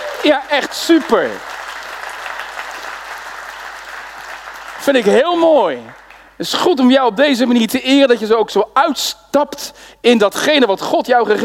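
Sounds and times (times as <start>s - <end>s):
church congregation applauding during a service: 0.0s - 6.4s
speech: 0.2s - 1.5s, 4.8s - 11.4s.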